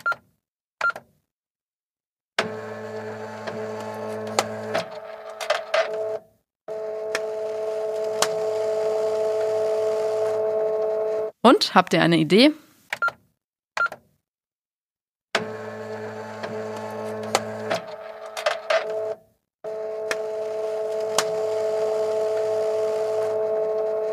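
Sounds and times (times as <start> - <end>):
fax machine dialing touch tones: 2.4 - 11.3, 15.4 - 24.1
person asking a question: 11.4 - 12.6
speech: 11.5 - 12.6.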